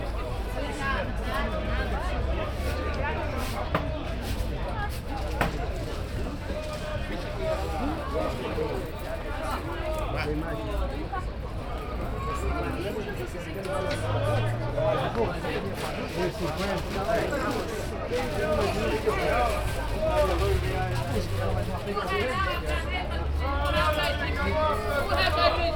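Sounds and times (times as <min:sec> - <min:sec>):
market ambience in Brazil: 0:00.0 - 0:25.7.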